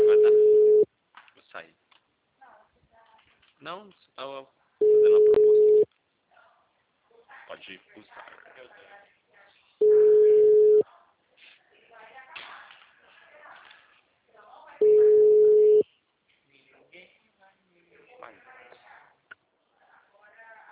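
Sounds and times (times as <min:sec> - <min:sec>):
telephone busy tone beeps after a dropped call: 0:00.0 - 0:00.8, 0:04.8 - 0:05.9, 0:09.8 - 0:10.8, 0:14.8 - 0:15.8.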